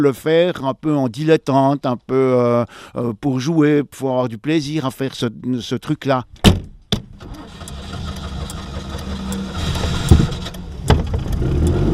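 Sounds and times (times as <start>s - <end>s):
speech: 0.0s - 6.5s
clunks: 6.3s - 11.7s
Citroën 2CV engine cranking, starting and idling roughly: 7.1s - 11.9s.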